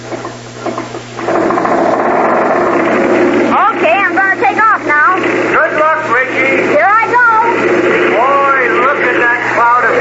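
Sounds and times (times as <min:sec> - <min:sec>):
homemade flying machine engine cranked to start: 0:01.2 - 0:09.9.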